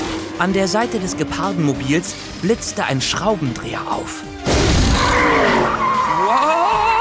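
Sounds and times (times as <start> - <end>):
solar-powered race car engine rumbling: 0.0 - 4.4
speech: 0.4 - 4.5
solar-powered race car tire skid squeal: 5.0 - 6.7.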